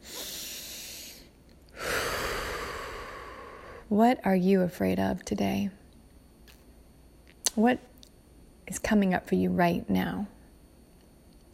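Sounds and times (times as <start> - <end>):
soft deep breaths during a mindfulness exercise: 0.0 - 3.9
speech: 3.9 - 5.8, 7.6 - 7.9, 8.7 - 10.4.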